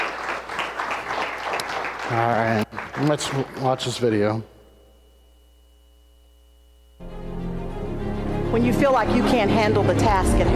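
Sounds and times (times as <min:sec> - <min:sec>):
audience applauding: 0:00.0 - 0:04.2
speech: 0:02.1 - 0:04.5, 0:08.6 - 0:10.5.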